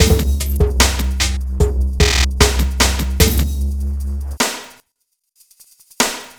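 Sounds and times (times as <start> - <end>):
futurist drum and bass beat with drums and percussion: 0.0 - 4.7.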